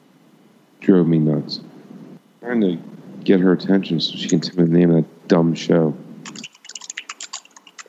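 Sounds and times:
speech: 0:00.9 - 0:01.7, 0:02.4 - 0:06.0
typing on a mechanical keyboard: 0:06.2 - 0:07.8.

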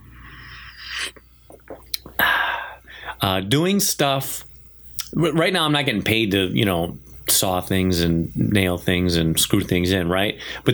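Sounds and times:
slurping sips of coffee from a mug: 0:00.0 - 0:02.9
soft mouth clicks and swallows: 0:00.2 - 0:03.0
speech: 0:03.2 - 0:04.5, 0:05.1 - 0:10.7.

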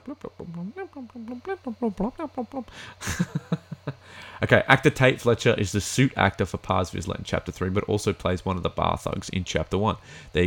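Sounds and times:
voice imitating the humming alert tone of trackers: 0:00.0 - 0:04.6
speech: 0:00.1 - 0:10.4
laughter: 0:03.0 - 0:04.0.

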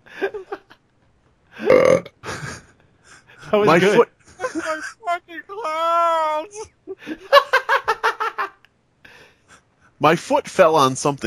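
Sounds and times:
laughter: 0:00.1 - 0:00.8, 0:02.2 - 0:02.7, 0:03.3 - 0:05.0, 0:06.6 - 0:08.6
short throaty vocal bursts: 0:01.6 - 0:02.1
loud drawn-out burp: 0:01.6 - 0:02.3
speech: 0:03.5 - 0:04.1, 0:10.0 - 0:11.2.

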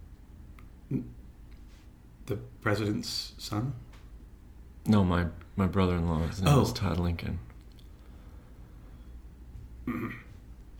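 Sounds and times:
short gravelly throat clearing: 0:00.9 - 0:01.2, 0:09.8 - 0:10.4
speech: 0:00.9 - 0:01.2, 0:02.3 - 0:03.9, 0:04.8 - 0:07.5, 0:09.9 - 0:10.2.

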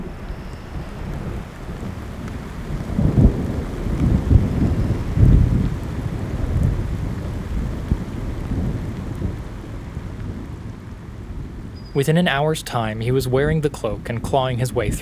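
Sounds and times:
steady hiss of rain: 0:00.0 - 0:10.1, 0:10.9 - 0:14.9
low rolling thunder: 0:00.0 - 0:10.6
faint gusts of wind: 0:00.0 - 0:14.9
speech: 0:12.0 - 0:14.9.

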